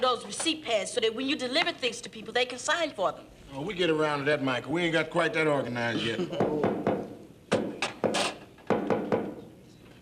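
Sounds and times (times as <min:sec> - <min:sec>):
speech: 0:00.0 - 0:06.7
person knocking on a door in a quick patterned rhythm: 0:06.4 - 0:09.4.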